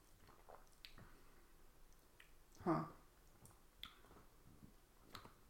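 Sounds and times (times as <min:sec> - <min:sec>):
soft wet mouth clicks: 0:00.2 - 0:01.2, 0:01.9 - 0:02.7, 0:03.2 - 0:04.2, 0:05.0 - 0:05.4.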